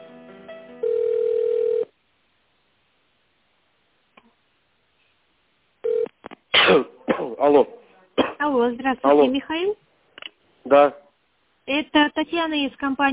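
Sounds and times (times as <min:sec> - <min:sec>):
steady telephone line tone during call transfer to an extension: 0:00.8 - 0:01.9, 0:05.8 - 0:06.1
telephone line short beeps during call transfer: 0:00.8 - 0:01.9
speech: 0:07.4 - 0:07.8, 0:08.4 - 0:09.8, 0:10.7 - 0:11.0, 0:11.7 - 0:13.1.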